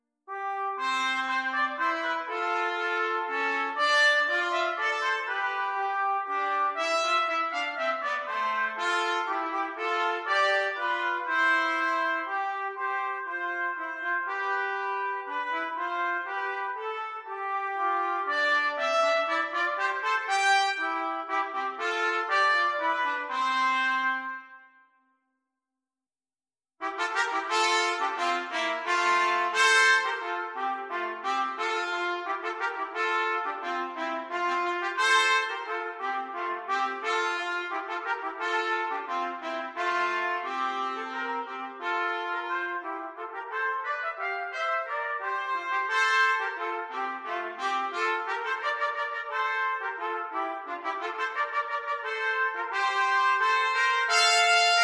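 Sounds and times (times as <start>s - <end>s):
trumpet horn duet: 0.3s - 24.8s, 26.8s - 54.8s.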